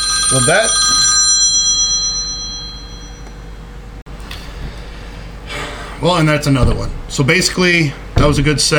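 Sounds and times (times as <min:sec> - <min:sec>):
telephone-style bell ringing: 0:00.0 - 0:03.7
speech: 0:00.3 - 0:00.9, 0:06.0 - 0:08.7
low rumbling noise: 0:01.1 - 0:08.7.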